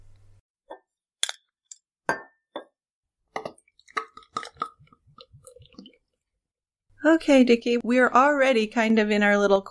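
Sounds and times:
glass clinking: 2.1s - 2.8s
speech: 7.0s - 9.7s.

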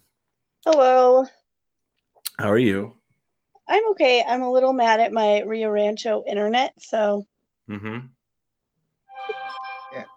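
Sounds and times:
speech: 0.6s - 1.4s, 2.4s - 3.0s, 3.7s - 8.2s
phone ringtone with bright electronic melody: 9.1s - 10.1s.

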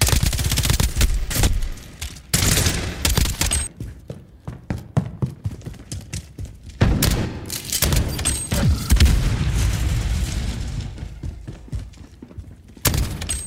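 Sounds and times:
gunfire from a military-style shooter video game: 0.0s - 3.7s, 6.8s - 11.5s, 12.8s - 13.4s
heavy booming video game explosions: 8.5s - 11.5s.

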